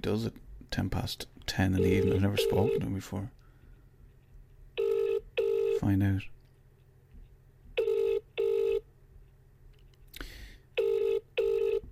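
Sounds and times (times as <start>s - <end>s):
speech: 0.0s - 3.4s, 5.8s - 6.4s
hum: 0.0s - 11.9s
outgoing phone call ringing tone: 1.8s - 2.9s, 4.8s - 5.8s, 7.8s - 8.8s, 10.8s - 11.9s.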